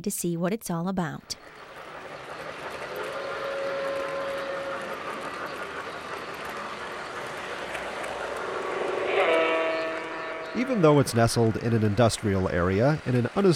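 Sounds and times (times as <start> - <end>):
speech: 0.0 - 1.6, 10.6 - 13.5
model toy trains running on tracks at a toy train museum: 1.0 - 13.5
sustained whistle-like tones of model toy trains: 3.1 - 5.3, 8.4 - 11.6.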